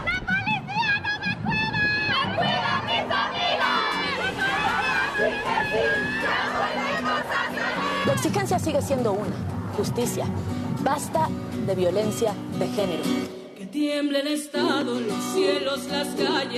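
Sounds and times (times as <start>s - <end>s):
continuous crowd noise of a protest march: 0.0s - 13.6s
large crowd of women chanting at a protest march: 2.1s - 8.4s
speech: 7.4s - 16.5s.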